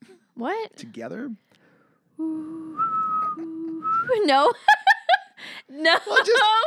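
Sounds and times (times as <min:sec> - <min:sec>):
speech: 0:00.4 - 0:01.5, 0:02.2 - 0:02.6, 0:04.1 - 0:04.8, 0:05.4 - 0:06.6
person humming a low steady hum: 0:02.2 - 0:04.1
person whistling a warbling robot-like tone: 0:02.3 - 0:04.2.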